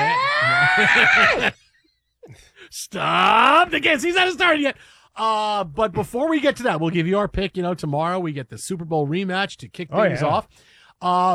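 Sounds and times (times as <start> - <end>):
woman screaming: 0.0 - 1.6
laughter: 0.0 - 4.6
speech: 0.8 - 1.6, 2.3 - 11.3.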